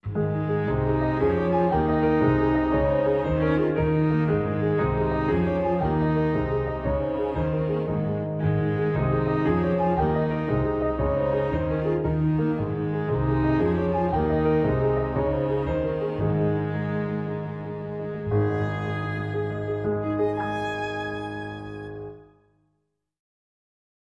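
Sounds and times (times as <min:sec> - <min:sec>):
jig played on strings: 0:00.1 - 0:22.2.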